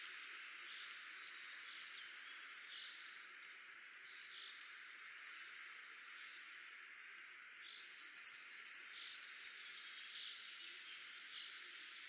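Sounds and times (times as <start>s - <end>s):
Eurasian blue tit Cyanistes caeruleus song: 0.0s - 12.0s
faint high calls from other birds: 0.9s - 3.4s, 7.7s - 10.4s.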